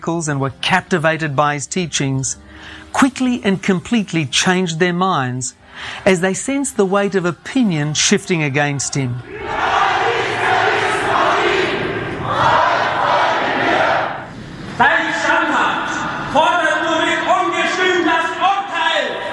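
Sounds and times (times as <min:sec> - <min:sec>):
speech: 0:00.0 - 0:09.8
large crowd murmuring and shouting: 0:06.3 - 0:19.3.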